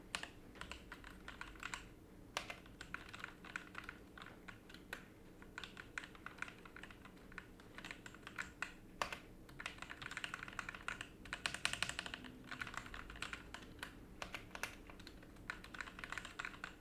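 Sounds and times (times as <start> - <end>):
Corsair K70 Core keyboard typing: 0.1 - 16.7.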